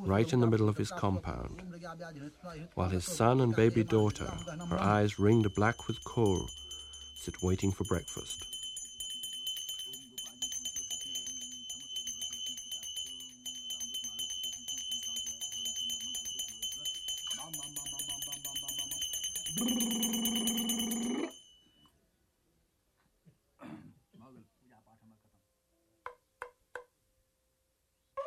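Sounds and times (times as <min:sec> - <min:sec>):
speech: 0:00.0 - 0:06.6, 0:07.2 - 0:08.6
ritual bells ringing: 0:03.0 - 0:21.9.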